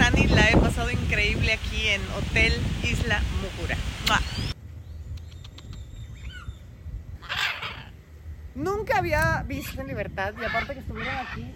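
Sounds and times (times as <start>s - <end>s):
low rumble: 0.0s - 11.5s
speech: 1.9s - 4.3s, 8.9s - 11.5s
faint bird chirps and clicks outdoors: 4.0s - 6.5s
birds squawking outdoors: 5.2s - 8.2s, 9.4s - 11.5s.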